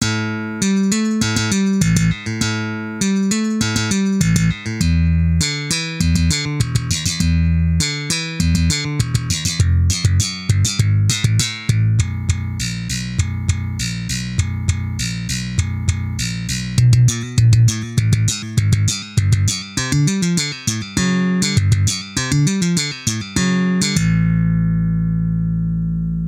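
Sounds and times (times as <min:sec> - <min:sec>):
6-string electric bass slap and pop: 0:00.0 - 0:26.2.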